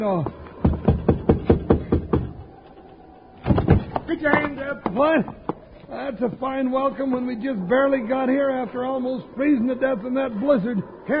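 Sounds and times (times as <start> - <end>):
speech: 0.0 - 0.4, 4.2 - 11.1
knocking on a wooden door: 0.6 - 2.3.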